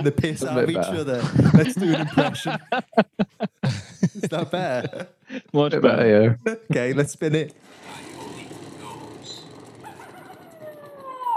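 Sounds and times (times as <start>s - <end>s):
laughter: 0.0s - 7.1s
speech: 0.0s - 8.1s
coyote howl: 8.0s - 11.3s.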